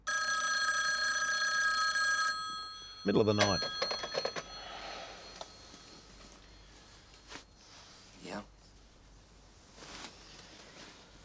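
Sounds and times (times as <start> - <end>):
telephone ringing with a metallic trilling bell: 0.0 - 7.7
speech: 3.0 - 4.3.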